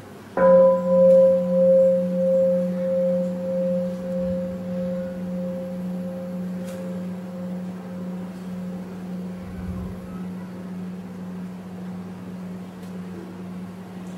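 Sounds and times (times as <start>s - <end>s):
single bell struck and ringing out: 0.4s - 9.4s.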